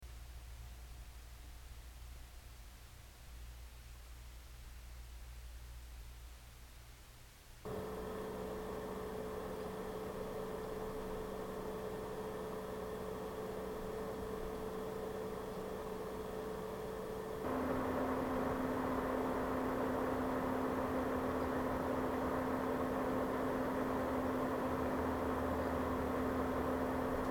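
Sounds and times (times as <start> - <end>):
Lenovo M58p computer idling at 0.6 m: 7.7 - 27.3.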